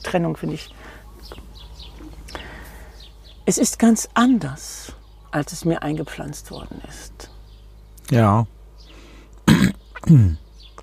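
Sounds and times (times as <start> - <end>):
speech: 0.0 - 1.5, 3.5 - 7.2, 8.1 - 8.6, 9.6 - 10.4
person clearing throat: 9.4 - 10.4.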